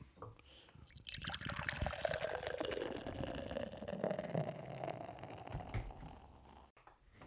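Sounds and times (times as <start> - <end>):
beer dripping: 0.8 - 6.3
West Coast IPA beer pouring into a glass: 0.9 - 6.7.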